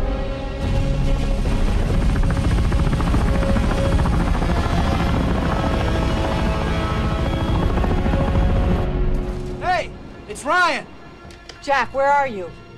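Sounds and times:
helicopter rotor chop and engine whine while descending to land: 0.2 - 10.2
speech: 10.4 - 10.9, 11.6 - 12.6.

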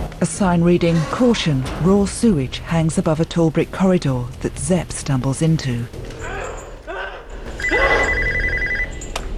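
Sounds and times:
speech: 0.2 - 6.0
telephone ringing: 7.5 - 9.2.

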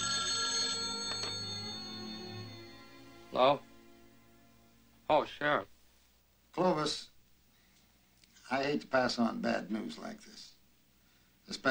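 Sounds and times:
telephone ringing: 0.0 - 2.9
speech: 3.3 - 3.7, 5.1 - 5.7, 6.6 - 7.1, 8.5 - 10.5, 11.5 - 11.6.

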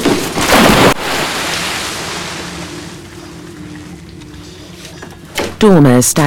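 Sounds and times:
body dropping back into water with a heavy splash: 0.0 - 3.0
steady low wash of churning water: 0.0 - 6.0
speech: 5.6 - 6.2.

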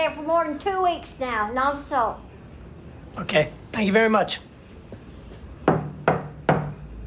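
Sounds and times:
speech: 0.0 - 2.3, 3.2 - 4.5
knocking on an apartment door: 5.6 - 6.8.

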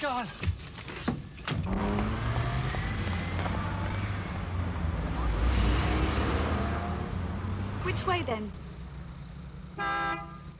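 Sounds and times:
speech: 0.0 - 0.5, 1.7 - 2.3, 7.9 - 8.6
low traffic rumble: 0.5 - 10.5
short car horn honk: 9.8 - 10.5.

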